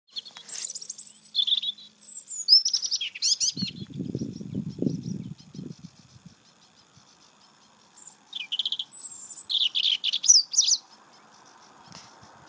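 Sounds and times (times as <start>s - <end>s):
bird singing high quick twittering phrases in Ireland: 0.1s - 12.4s
low rumbling noise: 3.5s - 7.1s.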